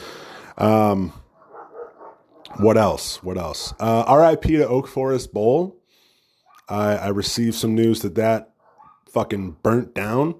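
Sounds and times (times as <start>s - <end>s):
speech: 0.6s - 1.2s, 2.5s - 5.8s, 6.7s - 8.5s, 9.1s - 10.3s
dog barking outside, heard through open windows in springtime: 1.3s - 3.9s, 6.4s - 6.7s, 8.6s - 9.1s.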